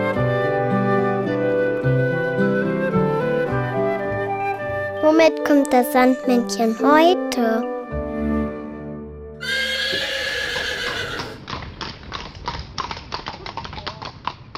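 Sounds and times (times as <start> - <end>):
music: 0.0 - 9.4
speech: 5.2 - 7.7
horse neighing: 9.4 - 11.5
horse hooves clip-clopping: 9.8 - 14.5.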